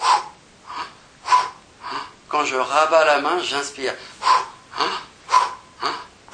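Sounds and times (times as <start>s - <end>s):
sharp forceful breaths pushed out through the mouth: 0.0s - 2.2s, 4.0s - 6.3s
speech: 2.3s - 4.1s, 4.8s - 5.1s, 5.8s - 6.0s.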